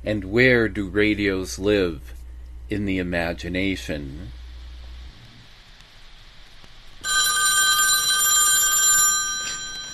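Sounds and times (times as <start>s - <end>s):
speech: 0.0s - 4.4s
telephone bell ringing: 7.0s - 9.9s.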